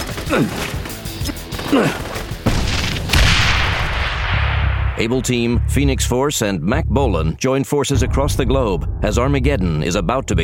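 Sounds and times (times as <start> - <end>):
hand grenade explosions: 0.0 - 5.2
speech: 0.3 - 0.8, 1.7 - 2.0, 5.0 - 10.4.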